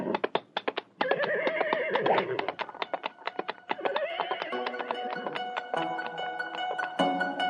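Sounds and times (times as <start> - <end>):
horse hooves clip-clopping: 0.0 - 7.3
horse whinnying: 1.0 - 2.8, 3.7 - 4.9.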